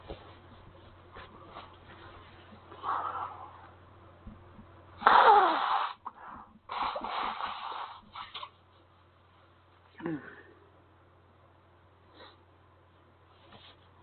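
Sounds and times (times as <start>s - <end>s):
person blowing nose with loud honking bursts: 5.0s - 8.5s.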